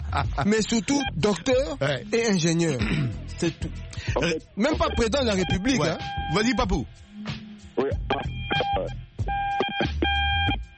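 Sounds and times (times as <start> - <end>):
speech: 0.1 - 9.4
phone giving off electronic beeps: 0.9 - 1.4, 4.2 - 6.6, 7.8 - 10.7.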